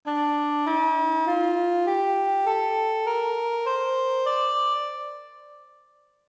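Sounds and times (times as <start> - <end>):
melody in the bayati scale in D mode: 0.0 - 6.0.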